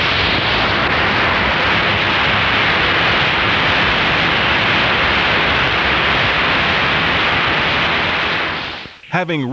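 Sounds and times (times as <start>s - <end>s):
AM radio hiss while tuning between stations: 0.0s - 9.5s
speech: 9.2s - 9.5s.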